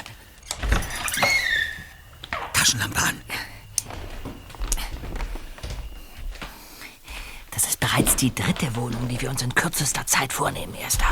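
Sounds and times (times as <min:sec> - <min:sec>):
apartment door creaking open during a break-in: 0:00.4 - 0:11.1
speech: 0:02.7 - 0:03.5, 0:08.0 - 0:11.1.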